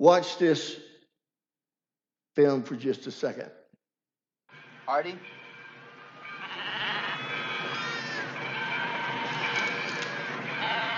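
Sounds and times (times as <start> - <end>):
speech: 0.0 - 0.8, 2.4 - 3.6, 4.9 - 5.4
flock of sheep bleating: 6.2 - 10.9
Judas goat bleating: 6.4 - 8.3, 10.6 - 10.9.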